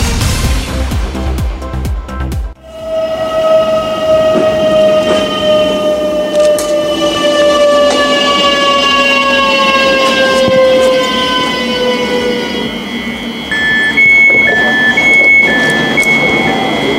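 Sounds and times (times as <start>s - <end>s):
regional passenger train running on the S74 line in Poland: 0.0s - 16.9s.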